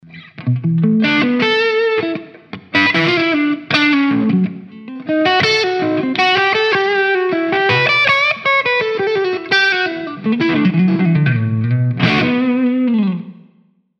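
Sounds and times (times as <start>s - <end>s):
slow blues music: 0.0s - 13.6s.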